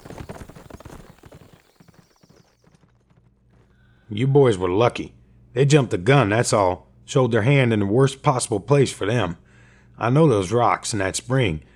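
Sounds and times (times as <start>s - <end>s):
several horses' hooves clip-clopping as riders ride west: 0.0s - 3.7s
speech: 4.1s - 9.4s, 10.0s - 11.7s.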